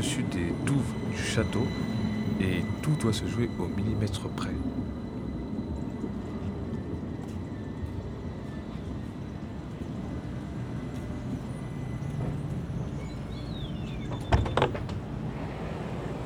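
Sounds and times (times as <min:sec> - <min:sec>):
speech: 0:00.0 - 0:04.8
faint tonal whines: 0:00.0 - 0:16.2
tram in motion heard from inside the car: 0:00.0 - 0:16.2
clunk: 0:14.0 - 0:15.2.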